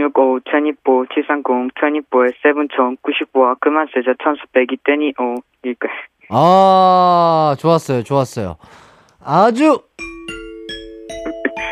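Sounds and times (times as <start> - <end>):
speech: 0.0 - 9.9
ding-dong-dang correct-answer chime: 10.0 - 11.6.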